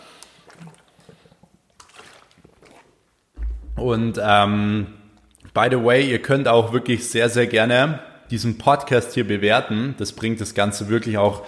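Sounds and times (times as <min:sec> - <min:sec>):
person quickly sipping and swallowing water: 0:00.0 - 0:03.2
speech: 0:03.8 - 0:05.0, 0:05.6 - 0:11.4.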